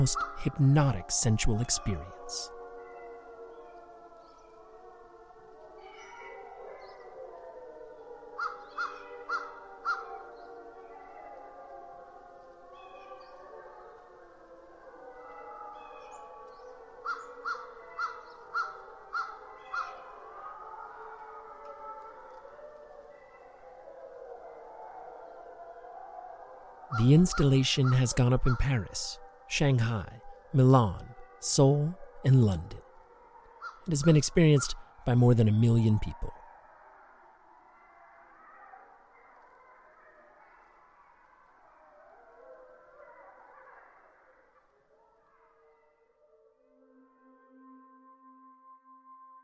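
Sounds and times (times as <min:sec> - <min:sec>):
wolves yipping and barking: 0:00.0 - 0:00.8, 0:05.7 - 0:12.1, 0:12.7 - 0:35.0, 0:36.4 - 0:46.1
speech: 0:00.0 - 0:02.6, 0:27.1 - 0:32.8, 0:33.9 - 0:36.4
chorus of wolves howling in Algonquin Park Ontario: 0:00.0 - 0:47.0.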